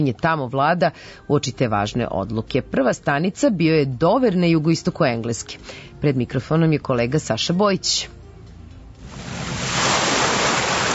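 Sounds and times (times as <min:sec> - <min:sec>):
speech: 0:00.0 - 0:08.2
sea waves washing onto a narrow shingle beach in Dover: 0:09.0 - 0:10.9.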